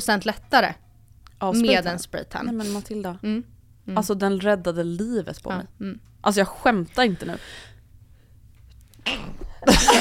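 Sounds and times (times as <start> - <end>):
speech: 0.0 - 0.8, 1.4 - 7.7, 9.0 - 10.0
person sneezing: 9.0 - 9.6.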